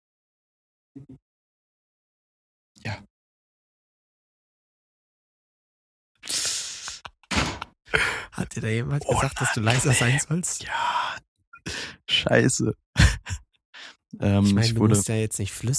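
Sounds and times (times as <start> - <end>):
speech: 1.0 - 1.3, 7.9 - 13.4, 14.2 - 15.7
door opening in hotel corridor: 7.2 - 7.7
laughter: 13.0 - 13.4.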